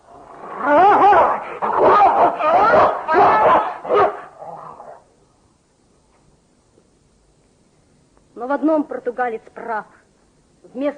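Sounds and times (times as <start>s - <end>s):
dog barking and growling: 0.7s - 5.1s
speech: 8.5s - 10.0s, 10.7s - 10.9s.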